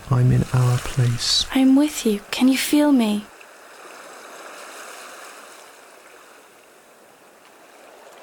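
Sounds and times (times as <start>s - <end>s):
sea water lapping and washing: 0.0s - 8.2s
speech: 0.1s - 3.3s.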